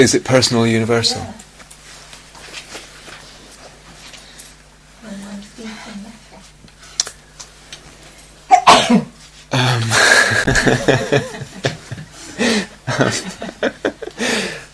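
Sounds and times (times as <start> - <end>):
speech: 0.0 - 1.4, 10.7 - 11.4, 13.0 - 13.3
loud sneeze: 8.5 - 9.2
people laughing: 9.9 - 14.6.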